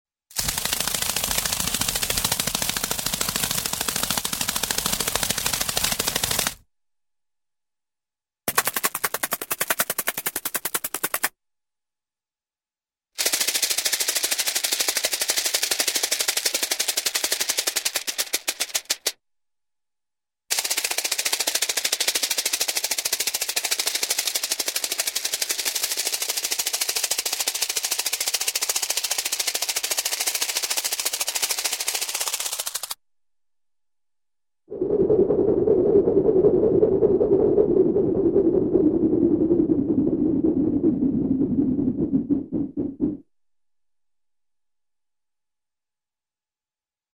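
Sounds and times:
steady rapid insect-like wings flapping: 0.3 - 6.6, 8.5 - 11.4, 13.2 - 19.2, 20.5 - 33.0, 34.7 - 43.2.

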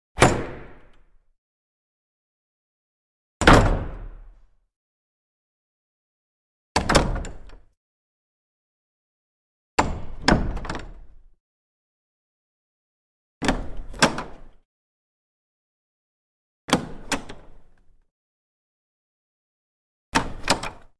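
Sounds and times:
wooden vestry door with bolt: 0.2 - 1.2, 3.4 - 4.3, 6.8 - 7.8, 9.8 - 11.4, 13.4 - 14.7, 16.7 - 18.0, 20.1 - 20.9.

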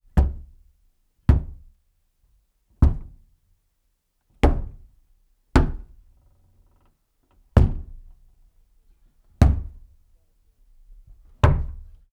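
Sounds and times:
hand impacts and hits on a door: 0.2 - 0.5, 1.3 - 1.7, 2.8 - 3.2, 5.6 - 6.0, 7.6 - 8.1, 9.4 - 9.9, 11.4 - 11.9.

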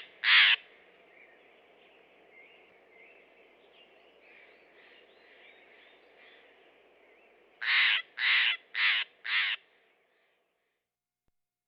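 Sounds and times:
Steller's jay calling harshly in Western North America: 0.0 - 0.6, 7.6 - 9.6
soft background bird notes: 0.0 - 11.0.

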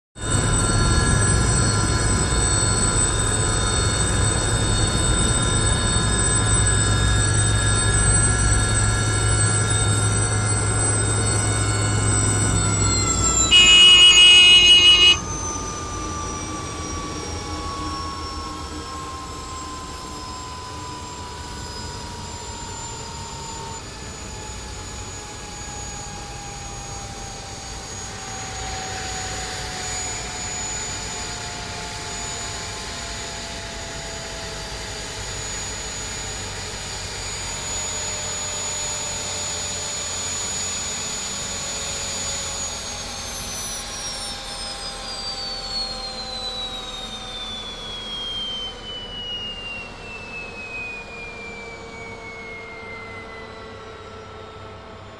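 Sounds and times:
Huey helicopter engine stopping and winding down heard from the interior: 0.2 - 55.1.

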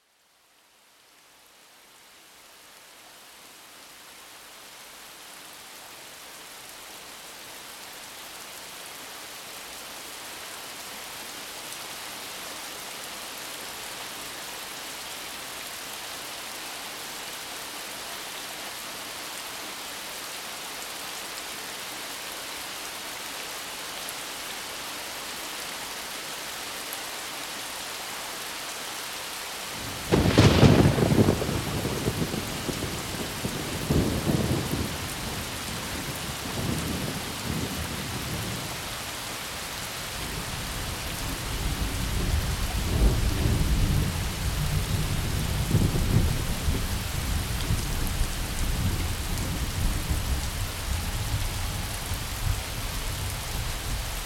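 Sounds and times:
thunderstorm: 29.8 - 38.7, 40.4 - 54.1.

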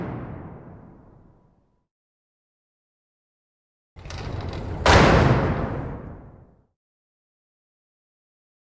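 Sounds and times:
metal dungeon doors shutting: 4.0 - 6.4.

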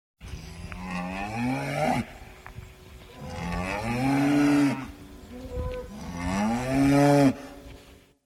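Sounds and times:
cows mooing: 0.6 - 2.2, 3.1 - 7.6.

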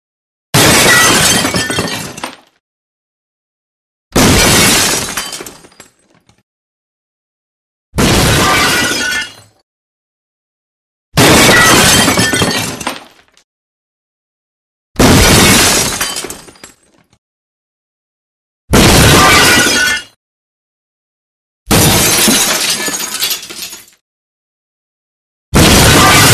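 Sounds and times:
heavy glass smashing: 0.6 - 2.5, 4.2 - 6.4, 8.0 - 9.6, 11.2 - 13.3, 15.0 - 17.2, 18.8 - 20.2, 21.7 - 24.0, 25.6 - 26.3.

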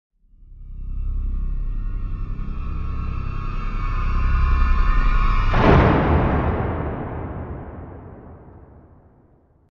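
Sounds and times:
horror string buildup music stinger: 0.3 - 8.7
big drum hit: 5.5 - 9.2.

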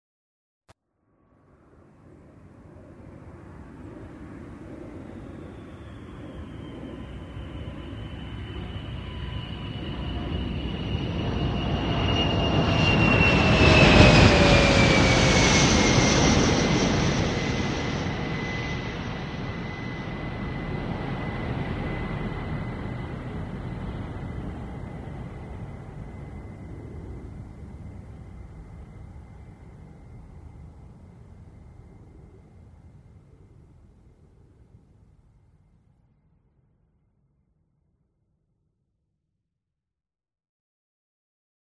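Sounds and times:
Sr 71 aircraft landing: 2.0 - 32.6.

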